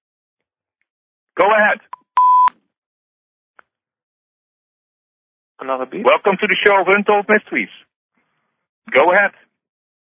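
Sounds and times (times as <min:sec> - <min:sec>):
speech: 0:01.4 - 0:02.0, 0:05.6 - 0:07.8, 0:08.8 - 0:09.4
electronic telephone beep of an incoming phone call: 0:02.2 - 0:02.5.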